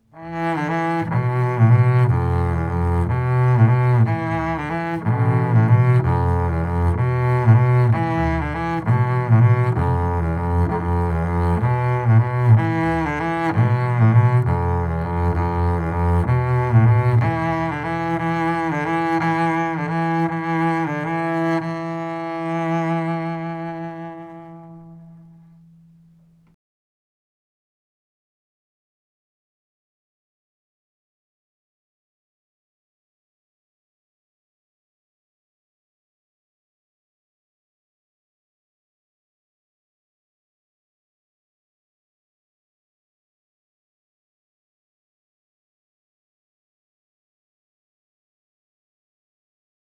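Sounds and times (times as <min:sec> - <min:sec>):
bowed pattern through A and G strings: 0:00.1 - 0:26.5.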